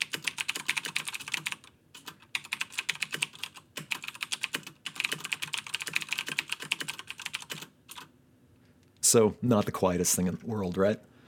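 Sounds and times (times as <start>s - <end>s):
typing on mechanical keyboard with clicky Green switches: 0.0s - 8.1s
speech: 9.1s - 11.1s.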